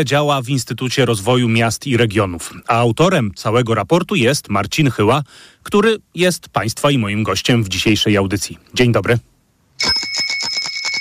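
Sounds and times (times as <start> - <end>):
speech: 0.0 - 10.0
bicycle bell ringing: 9.8 - 10.9.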